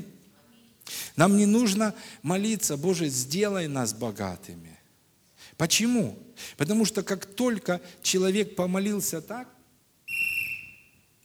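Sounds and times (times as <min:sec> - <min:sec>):
speech: 0:01.2 - 0:04.8, 0:05.6 - 0:09.6
shrill whistle blast blown as a penalty signal: 0:10.1 - 0:11.1.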